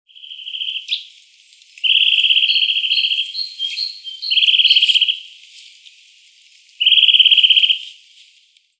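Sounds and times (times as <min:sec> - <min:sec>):
Eurasian nuthatch (Sitta europaea) giving rapid even-pitched trills: 0:00.1 - 0:01.1, 0:01.8 - 0:05.3, 0:06.8 - 0:07.9.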